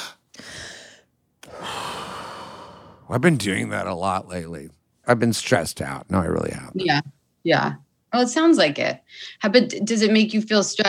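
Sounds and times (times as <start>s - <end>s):
deep breaths: 0.0s - 3.1s
speech: 3.1s - 10.8s.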